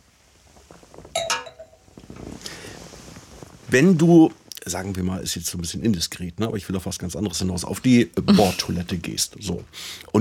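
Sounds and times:
quiet rustle: 0.0 - 9.7
wine glasses clinking in a toast: 1.2 - 1.8
speech: 3.7 - 10.1
laughter: 8.3 - 8.7.

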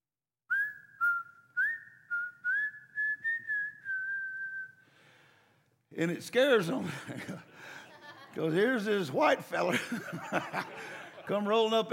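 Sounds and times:
man whistling a short lilting tune: 0.5 - 4.8
speech: 6.0 - 7.8, 8.4 - 11.9
laughter: 6.8 - 11.9.

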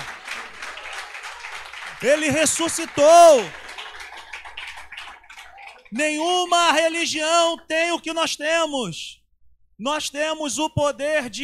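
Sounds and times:
large audience applauding: 0.0 - 6.0
speech: 2.0 - 3.6, 5.9 - 9.2, 9.8 - 11.4.

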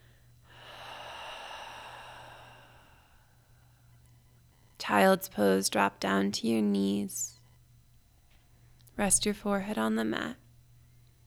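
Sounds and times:
open-mouth exhale after deep breath during a yoga session: 0.5 - 3.3
speech: 4.9 - 7.4, 9.0 - 10.4.

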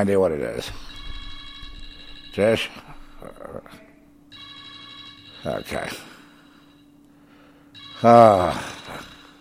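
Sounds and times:
speech: 0.0 - 1.0, 2.4 - 3.8, 5.4 - 6.1, 8.0 - 9.1
telephone ringing with a bright electronic tone: 0.8 - 2.9, 4.3 - 6.9, 7.7 - 9.3.

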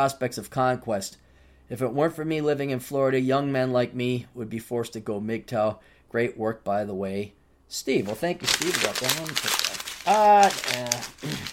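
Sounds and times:
speech: 0.0 - 11.5
paper letters being crumpled up: 8.0 - 11.5
person making drawn-out voiced sounds: 8.4 - 11.5.

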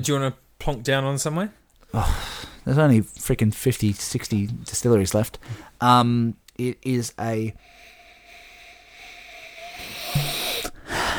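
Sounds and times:
speech: 0.0 - 7.9
person sniffing a whisky glass: 7.6 - 11.1.

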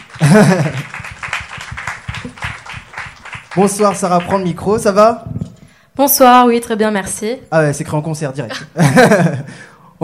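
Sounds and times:
audience applauding: 0.0 - 4.7
speech: 0.2 - 0.9, 3.6 - 5.3, 6.0 - 10.0
laughter: 0.2 - 1.2, 8.5 - 9.5.

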